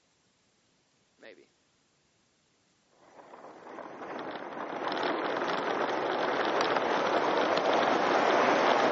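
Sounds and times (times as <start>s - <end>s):
speech: 1.2s - 1.6s
roller coaster roaring through a tunnel: 2.9s - 8.9s.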